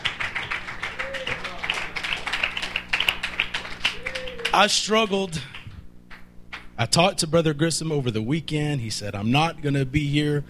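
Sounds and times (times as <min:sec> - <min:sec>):
crowd clapping: 0:00.0 - 0:06.7
speech: 0:04.6 - 0:05.6, 0:06.8 - 0:10.4.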